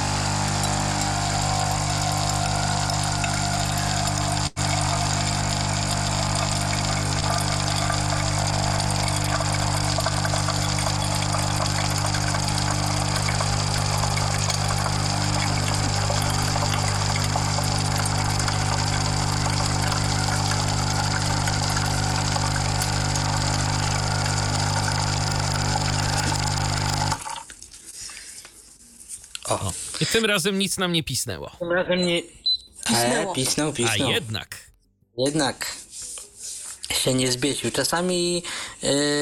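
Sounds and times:
capsule coffee machine pumping water to rinse its nozzles: 0.0 - 27.6
speech: 30.2 - 34.6, 35.2 - 35.7, 37.0 - 39.2.

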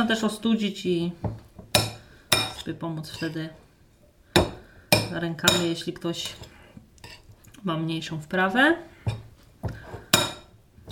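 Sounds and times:
speech: 0.0 - 1.4, 2.6 - 3.6, 5.1 - 6.5, 7.6 - 8.9
utensil scraping and clinking against a pan stirring filling: 4.4 - 7.4, 8.9 - 10.9.

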